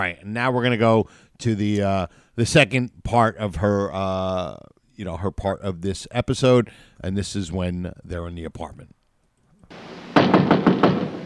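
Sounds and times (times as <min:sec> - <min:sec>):
speech: 0:00.0 - 0:09.0
steady hiss: 0:00.0 - 0:11.2
knocking on an apartment door: 0:10.2 - 0:11.2.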